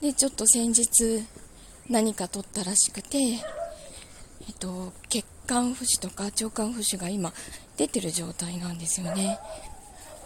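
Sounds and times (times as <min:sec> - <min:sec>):
speech: 0:00.0 - 0:03.6, 0:04.5 - 0:09.7
dog whiny cry by the window: 0:09.1 - 0:10.2.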